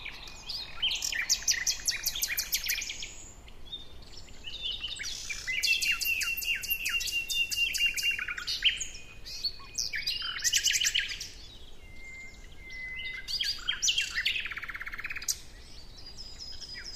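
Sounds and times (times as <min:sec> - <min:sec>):
common nightingale Luscinia megarhynchos song: 0:00.0 - 0:16.9.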